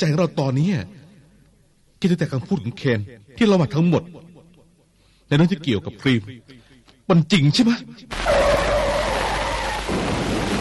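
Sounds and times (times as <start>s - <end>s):
speech: 0.0s - 1.0s, 2.0s - 4.3s, 5.3s - 8.7s
car skidding with tire squeal: 8.2s - 9.9s.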